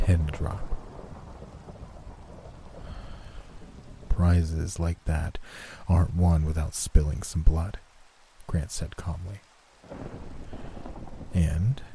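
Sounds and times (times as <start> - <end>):
deep thunder rumbling: 0.0 - 5.4, 9.8 - 11.9
steady dense rain: 0.0 - 11.9
speech: 0.1 - 0.7, 4.3 - 7.8, 8.5 - 10.3, 11.3 - 11.9.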